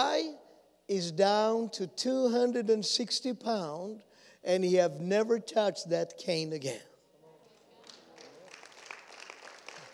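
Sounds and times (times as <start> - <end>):
speech: 0.0 - 6.9
crowd applauding: 7.8 - 9.9.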